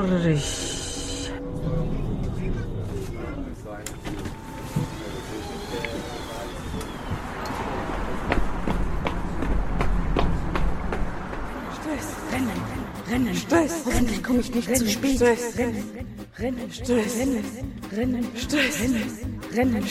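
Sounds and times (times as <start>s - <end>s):
speech: 0.0s - 0.8s, 13.1s - 19.9s
indistinct voices: 0.0s - 8.0s, 11.4s - 19.9s
running footsteps: 6.8s - 12.6s.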